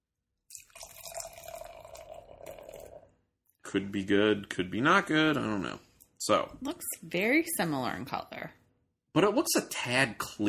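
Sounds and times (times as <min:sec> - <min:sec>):
lemongrass beer pouring into a glass: 0:00.5 - 0:03.2
speech: 0:03.7 - 0:08.6, 0:09.2 - 0:10.4.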